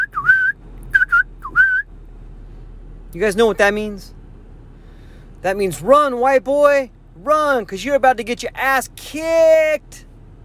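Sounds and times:
person whistling a brief bright tune: 0.0s - 1.9s
speech: 3.1s - 4.2s, 5.4s - 10.1s.

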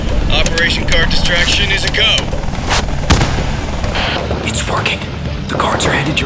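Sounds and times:
constant noisy background: 0.0s - 6.2s
speech: 0.4s - 3.5s, 4.4s - 6.2s
fireworks exploding: 2.5s - 4.2s.

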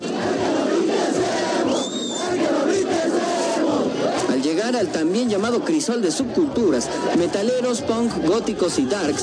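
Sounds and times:
large crowd chanting a jeering taunt in unison: 0.0s - 9.2s
whistle: 1.7s - 2.4s
speech: 4.6s - 9.2s.

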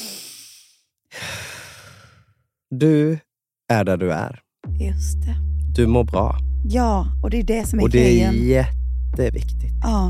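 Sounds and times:
deep breath: 0.0s - 2.4s
speech: 2.7s - 10.0s.

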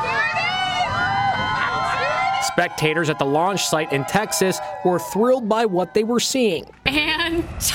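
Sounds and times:
large outdoor crowd shouting and chattering watching a space launch: 0.0s - 7.7s
speech: 2.6s - 7.7s.

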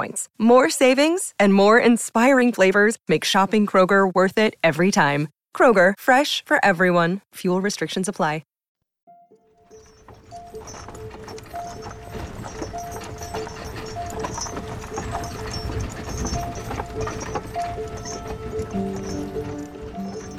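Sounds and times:
speech: 0.0s - 8.5s
horse hooves clip-clopping on a hard road: 9.7s - 20.3s
horse-drawn carriage rattling: 9.7s - 20.3s.

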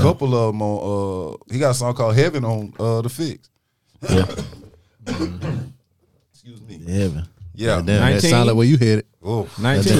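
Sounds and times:
speech: 0.0s - 5.8s, 6.4s - 9.9s
coughing and throat clearing: 4.0s - 5.8s.

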